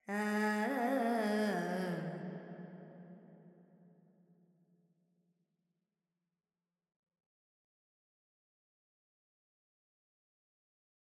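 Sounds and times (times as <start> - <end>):
Carnatic female pentatonic alap vocals: 0.0 - 2.5.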